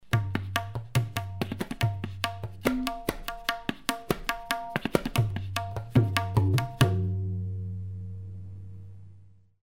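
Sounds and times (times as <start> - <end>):
tabla solo: 0.0 - 8.8.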